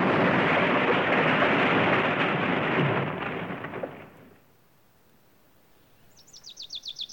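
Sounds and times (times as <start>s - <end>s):
airplane crashing into a small wood and exploding: 0.0s - 4.4s
high bird chirps: 5.9s - 7.1s.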